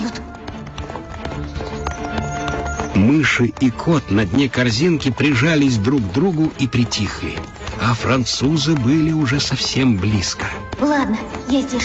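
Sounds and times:
galloping horse hooves during a chase: 0.0 - 11.8
speech: 3.0 - 11.8.

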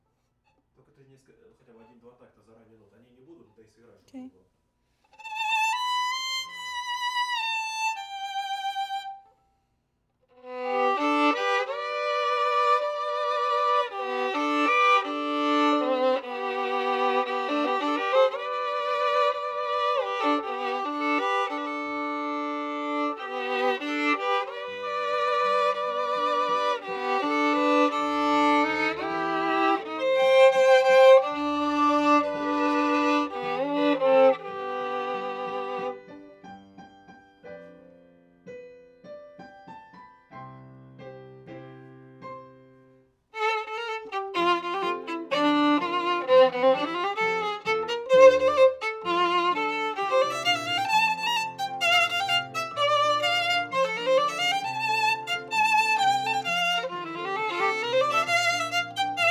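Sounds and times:
viola playing C: 5.1 - 9.3, 10.3 - 36.3, 43.3 - 59.2.

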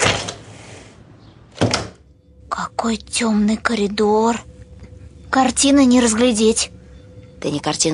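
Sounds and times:
door opening in a nursing home: 1.5 - 2.1
speech: 2.8 - 4.5, 5.3 - 6.8, 7.4 - 7.9.

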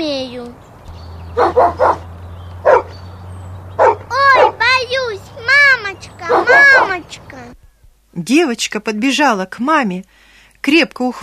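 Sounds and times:
speech: 0.0 - 0.7, 1.4 - 2.0, 7.1 - 11.2
dog barking: 1.4 - 3.0, 3.8 - 4.8, 6.2 - 7.0.

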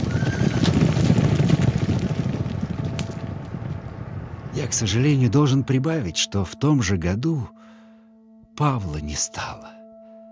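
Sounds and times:
herd of horses galloping past: 0.0 - 5.0
speech: 4.7 - 7.6, 8.6 - 9.8.

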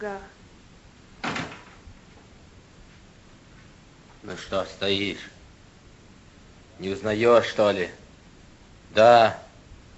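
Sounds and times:
speech: 0.0 - 0.4, 4.2 - 5.4, 6.8 - 8.0, 8.9 - 9.4
door opening with a clack and rattle: 1.2 - 1.8.

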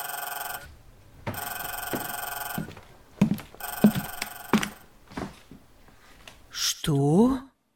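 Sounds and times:
telephone ringing in electronic bursts: 0.0 - 0.7, 1.3 - 2.9, 3.6 - 4.9
speech: 6.9 - 7.5.

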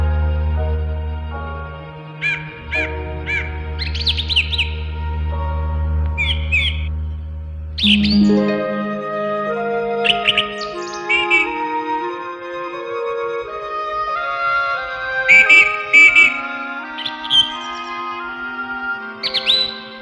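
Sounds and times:
soft steady musical background: 0.0 - 20.0
sparrow chirping: 2.2 - 5.0, 6.2 - 7.0, 7.8 - 8.5, 10.0 - 11.7, 15.3 - 16.4, 17.0 - 18.4, 19.2 - 20.0.

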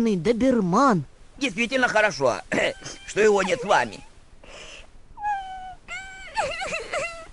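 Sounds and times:
speech: 0.0 - 4.1
high wavering crying and whimpering with plaintive wails from a hut: 2.4 - 4.1, 5.2 - 7.3.

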